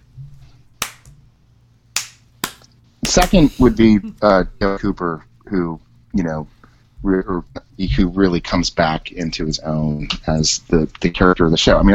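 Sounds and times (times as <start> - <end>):
slow deliberate sharp hand claps: 0.8 - 1.2, 2.0 - 3.5
speech: 3.1 - 11.9.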